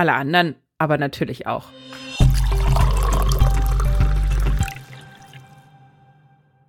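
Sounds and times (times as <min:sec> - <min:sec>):
speech: 0:00.0 - 0:02.8
coffee pouring into a cup: 0:02.2 - 0:05.6.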